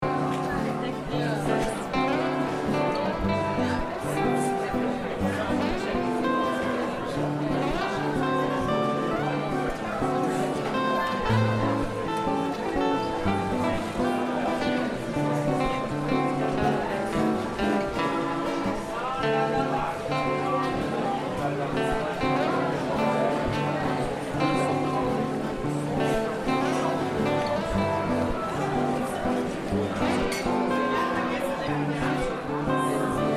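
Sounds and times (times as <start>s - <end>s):
mixed crowd chatter in a pub: 0.0s - 33.3s.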